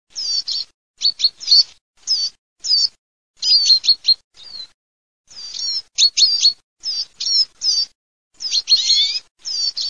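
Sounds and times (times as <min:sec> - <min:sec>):
chaffinch singing: 0:00.1 - 0:09.8.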